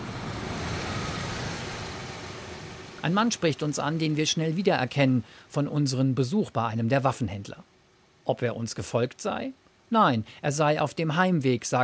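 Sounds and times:
car engine rumbling: 0.0s - 5.3s
road noise: 0.0s - 5.9s
speech: 3.0s - 7.7s, 8.3s - 11.8s.

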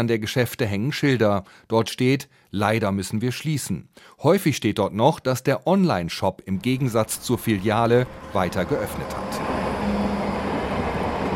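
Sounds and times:
speech: 0.0s - 9.5s
tram rolling past on a street: 6.6s - 11.3s.

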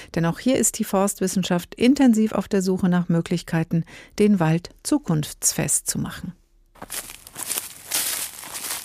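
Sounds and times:
speech: 0.2s - 7.5s
footsteps crunching through dry fallen leaves: 6.8s - 8.8s.

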